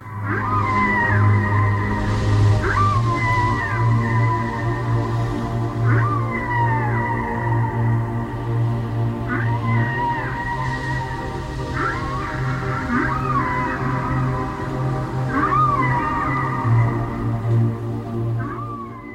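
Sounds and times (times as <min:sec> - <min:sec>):
whale song: 0:00.0 - 0:19.1.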